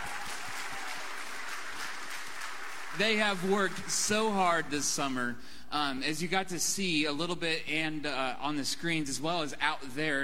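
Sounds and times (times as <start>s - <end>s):
audience applause at a church youth event: 0.0s - 4.6s
speech: 3.0s - 10.2s.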